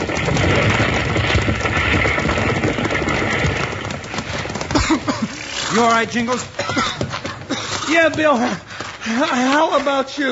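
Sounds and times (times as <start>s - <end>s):
burning livery stable fire roaring: 0.0s - 9.0s
frantic horses clattering hooves in a burning livery stable: 0.0s - 10.2s
frantic horses whinnying in a burning livery stable: 4.2s - 8.7s
speech: 5.8s - 6.8s, 7.9s - 10.2s.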